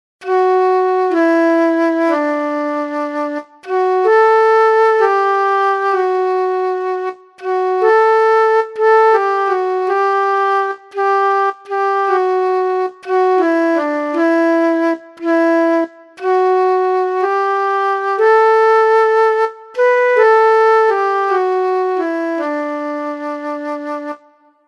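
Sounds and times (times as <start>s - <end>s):
flute: 0.2s - 24.6s.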